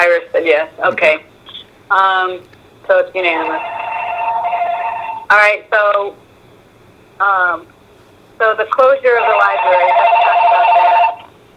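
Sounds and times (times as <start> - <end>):
speech: 0.2 - 1.3, 1.9 - 3.8, 5.3 - 6.2, 7.2 - 7.8, 8.4 - 10.7
telephone ringing during a meeting: 3.2 - 5.3, 9.1 - 11.3.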